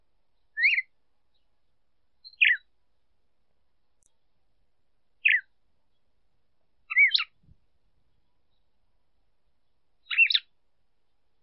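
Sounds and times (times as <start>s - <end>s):
female red-cowled cardinal calling: 0.4s - 2.7s, 5.2s - 6.0s, 6.9s - 7.4s, 9.6s - 10.5s.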